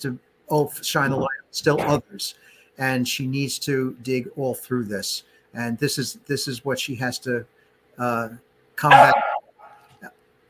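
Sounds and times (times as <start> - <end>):
speech: 0.0 - 9.2
puppy yapping: 8.9 - 9.8.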